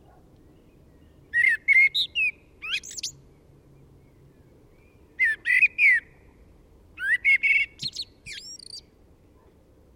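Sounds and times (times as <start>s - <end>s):
Eurasian blackbird Turdus merula singing: 0.4s - 6.4s, 7.0s - 8.9s.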